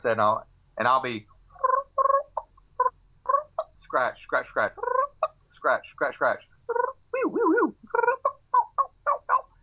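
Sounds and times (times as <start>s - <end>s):
speech: 0.0s - 1.3s, 3.9s - 5.0s, 5.6s - 7.7s
human voice imitating feeding turkey clucks: 1.5s - 3.8s, 4.7s - 5.4s, 6.7s - 9.6s.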